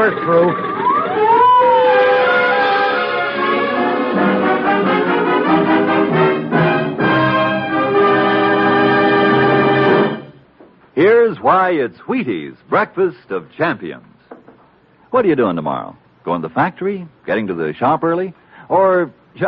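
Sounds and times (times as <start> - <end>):
speech: 0.0 - 0.8, 11.0 - 14.1, 15.1 - 19.4
police car sirens wailing: 0.0 - 10.2.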